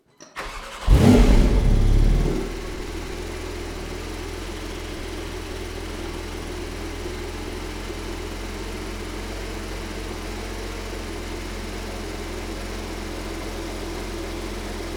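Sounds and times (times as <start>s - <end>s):
engine starting in normal mode: 0.2s - 3.8s.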